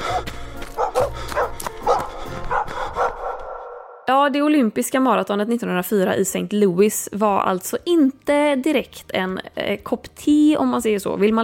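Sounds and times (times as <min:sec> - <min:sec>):
several aggressive dogs barking: 0:00.0 - 0:03.9
speech: 0:04.3 - 0:11.4.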